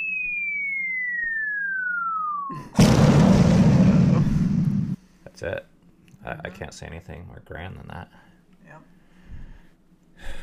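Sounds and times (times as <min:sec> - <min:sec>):
bomb falling whistle sliding downward: 0:00.0 - 0:02.7
speech: 0:02.5 - 0:03.0, 0:05.4 - 0:08.9
bomb explosion blast with dense rumbling: 0:02.8 - 0:05.0.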